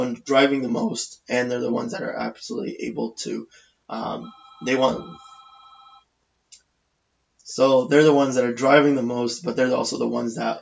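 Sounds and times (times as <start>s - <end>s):
speech: 0.0s - 5.3s, 7.5s - 10.6s
telephone ringing with electronic trill: 4.0s - 6.0s.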